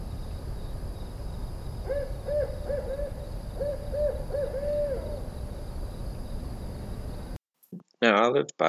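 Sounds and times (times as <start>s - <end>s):
steady hiss of outdoor night ambience: 0.0s - 7.4s, 8.0s - 8.6s
barred owl hooting: 1.8s - 5.6s
speech: 8.0s - 8.6s.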